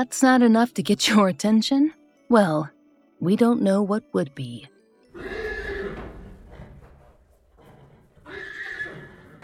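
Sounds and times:
speech: 0.0s - 5.3s
horse whinnying shrilly: 5.1s - 9.4s.

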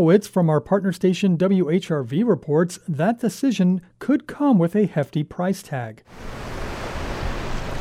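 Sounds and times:
speech: 0.0s - 6.6s
tidal floodwater splashing onto sidewalk of flooded street intersection as cars drive through: 6.2s - 7.7s.

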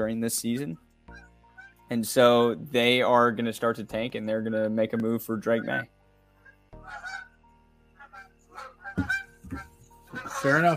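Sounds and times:
speech: 0.0s - 0.9s, 1.9s - 6.0s, 10.4s - 10.7s
geese honking: 0.6s - 1.9s, 4.9s - 10.7s.

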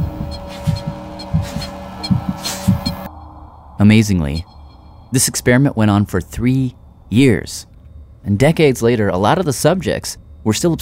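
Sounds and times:
racing heartbeat sound effect: 0.0s - 3.1s
faint hum: 0.0s - 10.8s
speech: 3.8s - 4.5s, 5.1s - 10.8s.

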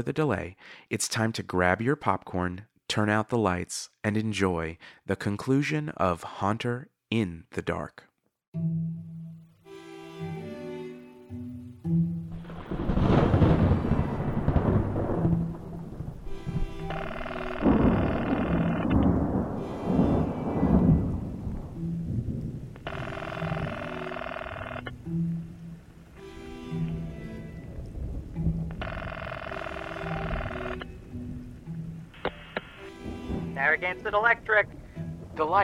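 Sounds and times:
speech: 0.0s - 9.1s, 33.7s - 34.8s, 35.4s - 35.6s
sustained eerie tonal music: 8.6s - 35.6s
rolling thunder from a thunderstorm with rain: 12.3s - 16.9s, 17.6s - 22.8s, 27.6s - 28.8s.

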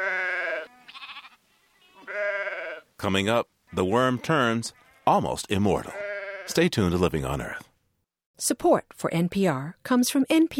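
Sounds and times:
Churro sheep bleating: 0.0s - 2.9s, 3.7s - 6.6s
speech: 3.0s - 7.7s, 8.4s - 10.5s.

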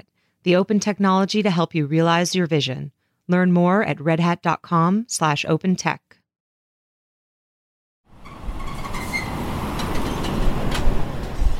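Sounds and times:
speech: 0.4s - 6.1s
road noise filling the truck cab: 8.1s - 11.5s
self-driving truck engine drone rolling down the road in South Florida: 8.1s - 11.5s.

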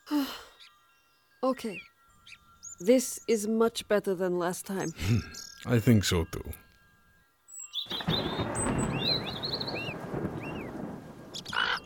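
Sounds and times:
birds chirping and whistling faintly: 0.5s - 3.8s, 4.4s - 6.7s, 7.5s - 11.8s
speech: 1.4s - 6.6s
thunder rumbling: 7.9s - 11.8s.

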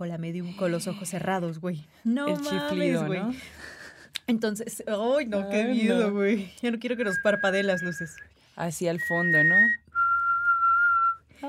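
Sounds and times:
speech: 0.0s - 9.8s
person whistling an eerie note imitating a ghost: 9.1s - 11.2s.

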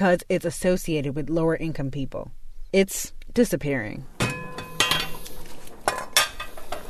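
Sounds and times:
speech: 0.0s - 4.1s
metal pots and utensils clinking in a kitchen: 4.3s - 5.2s, 5.9s - 6.8s.

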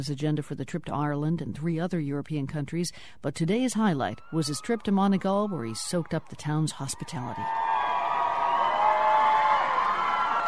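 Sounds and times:
speech: 0.0s - 7.7s
large crowd cheering and shouting outdoors in the rain: 5.5s - 10.4s.

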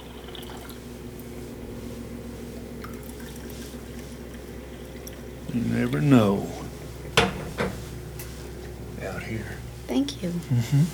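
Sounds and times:
water pouring into a cup for tea: 0.0s - 7.1s
low hum: 0.0s - 10.9s
speech: 5.5s - 6.6s, 9.3s - 10.9s.

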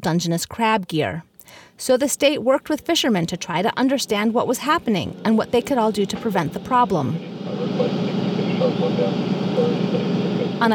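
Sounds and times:
speech: 0.0s - 8.0s, 8.7s - 10.0s
fishing boat engine running as the vessel leaves the harbor at Bodega Bay: 3.1s - 10.7s.

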